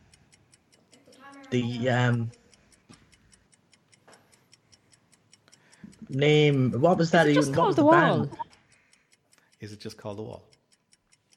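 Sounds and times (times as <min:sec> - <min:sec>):
quiz countdown clock ticking: 0:00.0 - 0:11.3
speech: 0:01.4 - 0:02.4, 0:06.1 - 0:08.4, 0:09.6 - 0:10.5
laughter: 0:06.1 - 0:08.5.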